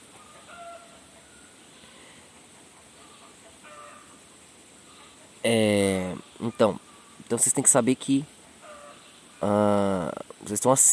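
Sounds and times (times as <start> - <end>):
roosters crowing alarm calls: 0.0 - 5.6, 8.4 - 9.8
steady hiss: 0.0 - 10.9
speech: 5.4 - 8.4, 9.4 - 10.9.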